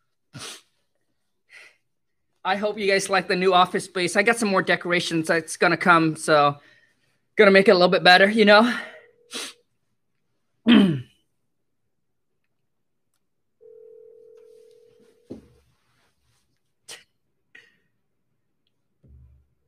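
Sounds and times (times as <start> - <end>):
speech: 2.4 - 6.7, 7.4 - 9.5
person clearing throat: 10.7 - 11.2
electronic ringback tone through a phone line: 13.6 - 15.4.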